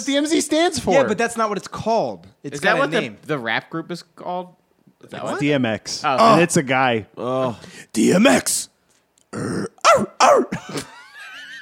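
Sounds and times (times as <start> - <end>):
speech: 0.0 - 8.7, 9.3 - 11.0
person imitating dog barks: 9.6 - 10.6.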